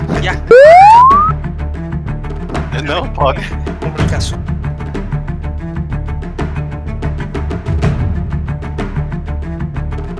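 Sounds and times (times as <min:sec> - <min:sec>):
speech: 0:00.2 - 0:00.8, 0:02.8 - 0:04.5
loud electronic censorship bleep tone rising in pitch: 0:00.5 - 0:01.4.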